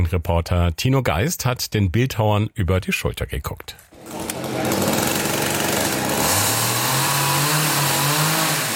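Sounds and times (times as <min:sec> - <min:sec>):
speech: 0:00.0 - 0:04.9
chainsaw cutting into thick oak trunks: 0:04.0 - 0:08.7.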